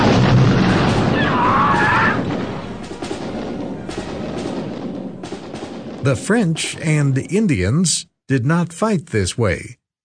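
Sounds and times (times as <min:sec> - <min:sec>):
massed gunfire from troops firing weapons in battle: 0:00.0 - 0:06.9
speech: 0:06.0 - 0:09.8.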